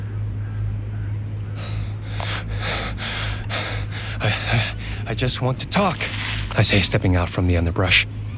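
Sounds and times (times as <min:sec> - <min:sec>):
steady low hum: 0:00.0 - 0:08.3
heavy ragged panting after running: 0:01.5 - 0:05.1
speech: 0:05.1 - 0:08.2.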